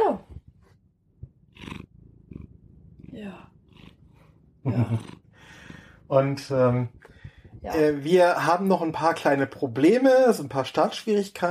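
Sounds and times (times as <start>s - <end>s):
cat calling: 1.6s - 4.2s
speech: 3.2s - 3.6s, 4.6s - 5.2s, 6.1s - 7.0s, 7.6s - 11.4s.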